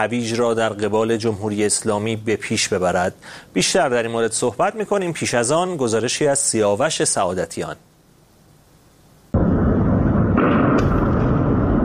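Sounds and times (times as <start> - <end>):
speech: 0.0 - 7.9
crackling burst from missile strike on a port container yard: 9.3 - 11.8
explosion from missile strike on a port container yard: 9.4 - 11.8
heavy rumbling roar from missile strike on a port container yard: 9.4 - 11.8.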